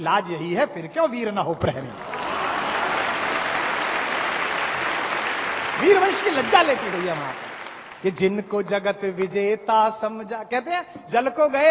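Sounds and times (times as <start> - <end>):
speech: 0.0 - 2.2, 5.8 - 11.6
audience applause: 1.9 - 8.2.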